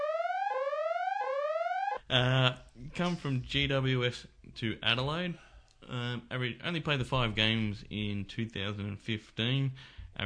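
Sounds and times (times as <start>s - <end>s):
electronic alarm sound effect with buzzy whooping tone: 0.0s - 2.0s
speech: 2.1s - 10.2s.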